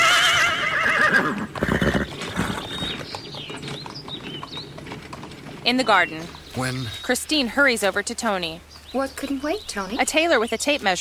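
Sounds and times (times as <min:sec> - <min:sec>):
horse whinnying: 0:00.0 - 0:03.1
horse hooves clip-clopping: 0:00.0 - 0:11.0
speech: 0:05.7 - 0:11.0.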